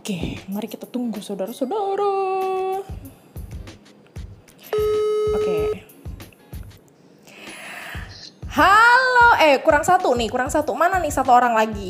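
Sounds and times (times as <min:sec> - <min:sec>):
thumping beat: 0:00.0 - 0:00.8, 0:02.4 - 0:06.9, 0:07.5 - 0:11.8
speech: 0:00.0 - 0:03.0, 0:09.4 - 0:11.8
phone line ringing tone: 0:04.7 - 0:05.9.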